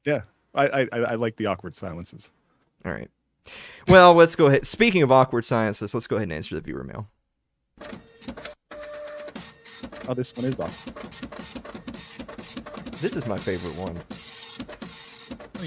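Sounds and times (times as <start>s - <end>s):
speech: 0.0s - 7.2s, 7.8s - 8.5s, 10.1s - 12.1s, 13.0s - 14.2s
printer whirring and clattering: 7.8s - 15.6s.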